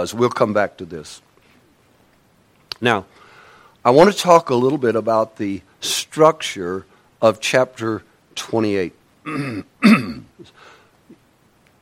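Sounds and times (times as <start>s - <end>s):
speech: 0.0s - 1.3s, 2.8s - 3.2s, 3.8s - 10.8s
man clearing his throat of phlegm: 9.2s - 10.5s.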